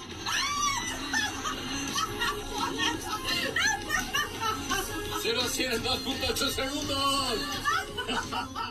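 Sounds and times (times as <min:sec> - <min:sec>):
women screaming during a fast car ride: 0:00.1 - 0:04.9
excited voices: 0:00.2 - 0:08.6
laughter: 0:00.8 - 0:06.4, 0:07.2 - 0:08.6
speech: 0:05.2 - 0:08.6.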